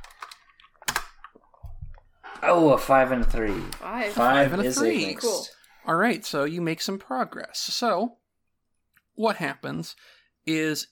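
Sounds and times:
typing on a computer keyboard: 0.0 - 1.4
speech: 2.4 - 8.2, 9.2 - 10.9.

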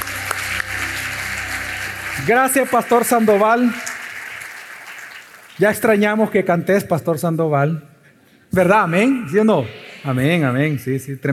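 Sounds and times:
audience applauding: 0.0 - 6.2
speech: 2.2 - 3.8, 5.6 - 7.9, 8.5 - 11.3.

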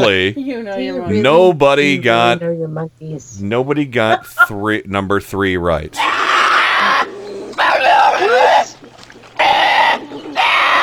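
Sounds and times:
speech: 0.0 - 6.3
baby bear crying to be fed: 6.0 - 8.8, 9.4 - 10.8.

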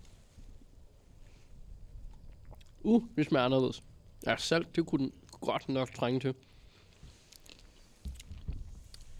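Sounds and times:
crunchy chewing of chicken curry: 2.1 - 2.8, 6.7 - 9.1
speech: 2.8 - 6.5.

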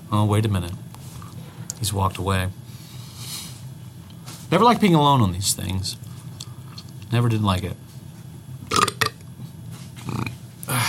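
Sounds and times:
speech: 0.1 - 0.9, 1.8 - 2.6, 4.5 - 6.1, 7.1 - 7.8
guttural throat sounds: 8.7 - 9.2, 10.0 - 10.8
short wet burp: 8.7 - 9.2.

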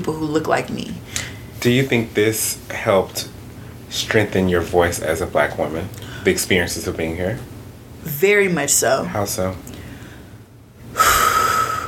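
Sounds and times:
speech: 0.0 - 9.8
deep breath: 9.7 - 11.8.

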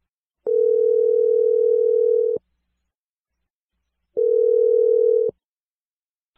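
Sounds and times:
telephone ringing tones: 0.5 - 2.4, 4.2 - 5.4.

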